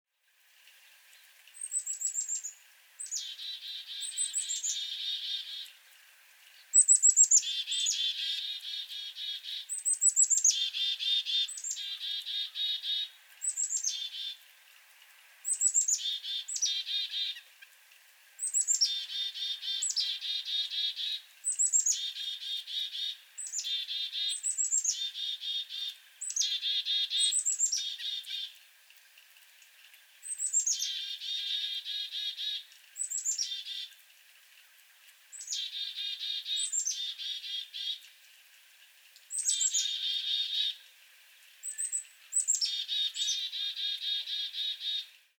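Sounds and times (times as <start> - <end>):
Black-capped Chickadee dee-dee-dee calls: 1.6 - 5.8, 6.6 - 14.4, 15.4 - 17.7, 18.4 - 28.6, 30.2 - 33.9, 35.4 - 38.0, 39.3 - 40.8, 41.6 - 45.1.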